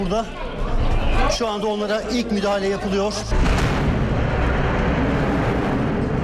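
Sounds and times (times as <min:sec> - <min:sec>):
speech: 0:00.0 - 0:00.6, 0:01.2 - 0:03.8
bomb explosion rumbling roar: 0:03.3 - 0:06.2.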